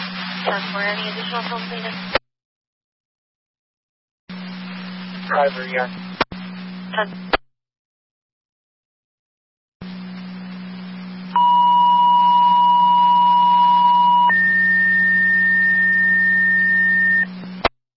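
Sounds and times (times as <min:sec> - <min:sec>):
constant hum and hiss: 0:00.0 - 0:02.2, 0:04.3 - 0:07.4, 0:09.8 - 0:17.9
speech: 0:00.4 - 0:02.2, 0:05.3 - 0:06.0, 0:06.9 - 0:07.3
two-tone fire dispatch paging signal over a radio channel: 0:11.3 - 0:17.3.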